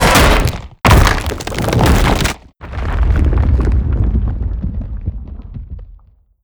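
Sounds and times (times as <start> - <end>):
destruction: 0.0 - 6.2
crack: 0.0 - 6.3.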